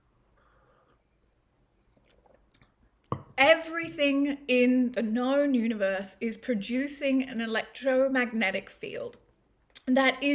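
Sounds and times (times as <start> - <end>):
person sipping tea from a cup: 0.3 - 1.2, 1.8 - 2.9
speech: 3.4 - 9.2, 9.9 - 10.3.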